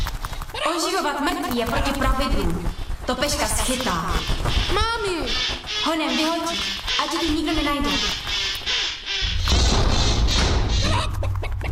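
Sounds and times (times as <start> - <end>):
speech: 0.8 - 8.3
hen clucking and squawking: 3.3 - 9.5, 10.3 - 11.7.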